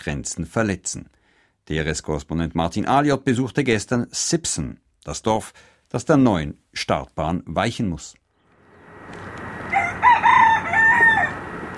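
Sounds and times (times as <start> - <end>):
speech: 0.0 - 8.2
rooster crowing: 9.5 - 11.7.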